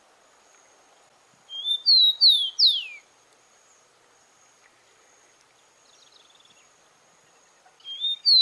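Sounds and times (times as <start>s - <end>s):
rufous-collared sparrow Zonotrichia capensis singing: 1.5s - 3.0s, 7.8s - 8.3s.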